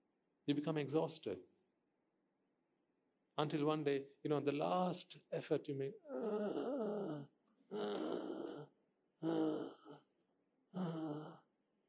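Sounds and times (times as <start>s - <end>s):
speech: 0.5s - 1.5s, 3.4s - 8.2s, 9.2s - 9.7s
voice imitating a dying person gasping for breath: 6.0s - 10.0s, 10.8s - 11.4s.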